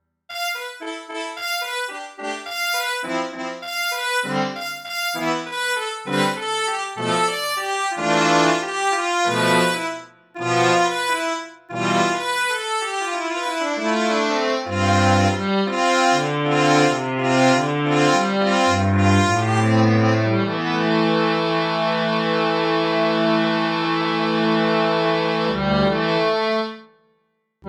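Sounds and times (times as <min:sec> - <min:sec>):
big dry brass organ reeds: 0:00.3 - 0:26.7.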